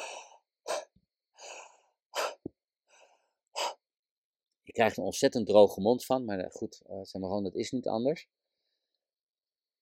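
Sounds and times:
rapid connected breathing with quick inhales and sharp exhales: 0.0 - 3.9
speech: 4.7 - 8.4.

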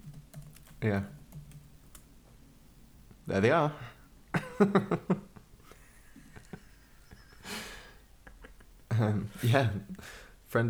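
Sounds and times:
typing on a computer keyboard: 0.0 - 2.0
low hum: 0.0 - 10.6
speech: 0.8 - 1.2, 3.3 - 3.9, 4.6 - 5.3, 9.0 - 10.6
laughter: 4.3 - 9.9.

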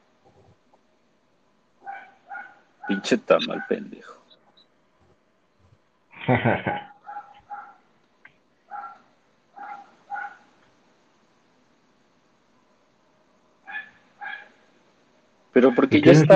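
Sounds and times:
steady hiss: 0.0 - 16.3
dog barking from a house across the street: 1.8 - 3.9, 7.0 - 7.9, 8.7 - 10.5, 13.6 - 14.6
speech: 2.9 - 4.2, 6.3 - 6.9, 15.6 - 16.3
laughter: 6.2 - 7.0.

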